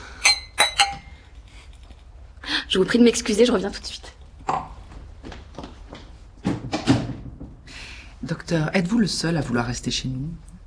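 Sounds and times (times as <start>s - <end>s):
glasses clinking in a toast: 0.0s - 1.3s
speech: 2.7s - 4.2s, 8.5s - 10.6s.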